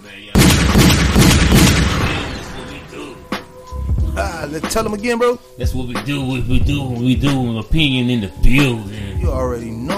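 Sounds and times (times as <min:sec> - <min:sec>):
gunshot sound effect with booming rumbling tail: 0:00.4 - 0:03.5
smaller sharp crack: 0:00.4 - 0:03.6
speech: 0:04.5 - 0:09.9.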